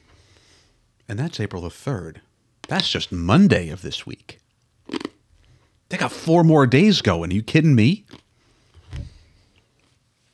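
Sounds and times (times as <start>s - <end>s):
speech: 1.1s - 4.4s, 5.9s - 8.2s
lozenge being bitten: 4.8s - 5.2s.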